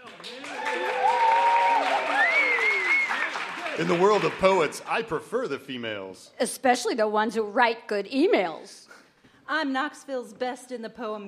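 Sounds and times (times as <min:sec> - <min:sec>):
crowd applauding: 0:00.0 - 0:05.4
crowd cheering and whooping: 0:00.2 - 0:04.2
speech: 0:03.8 - 0:08.9, 0:09.5 - 0:11.2.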